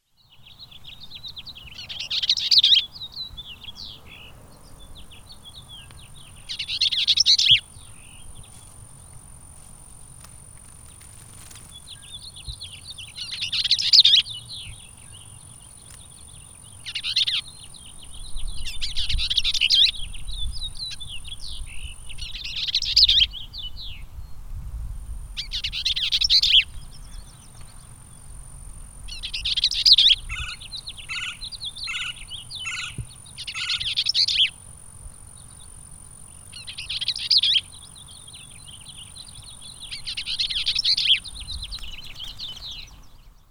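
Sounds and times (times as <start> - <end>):
Bells Vireo: 0.0 - 24.5, 25.4 - 43.5.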